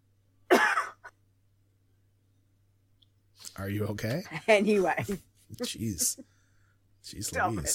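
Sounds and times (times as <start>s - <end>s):
quiet hum: 0.0s - 7.7s
harsh cough: 0.5s - 1.2s
speech: 3.6s - 6.4s, 7.0s - 7.7s.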